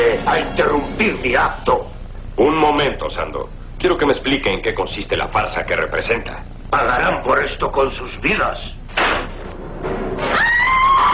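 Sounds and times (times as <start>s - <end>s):
speech: 0.1s - 8.8s
woman screaming: 10.3s - 11.1s.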